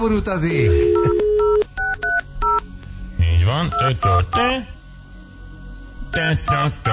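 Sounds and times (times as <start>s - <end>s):
speech: 0.0s - 1.2s, 3.5s - 4.8s, 6.1s - 6.9s
telephone touch-tone dialing beeps: 0.7s - 2.6s.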